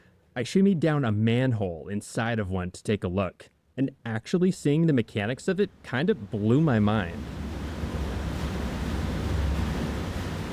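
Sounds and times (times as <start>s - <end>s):
speech: 0.4s - 7.5s
glacier meltwater flowing into an underground reservoir: 5.7s - 10.5s.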